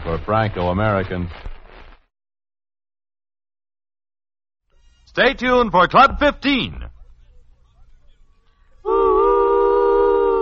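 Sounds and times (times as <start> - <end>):
speech: 0.0 - 1.5, 5.2 - 6.9
train whistle blowing: 8.8 - 10.4.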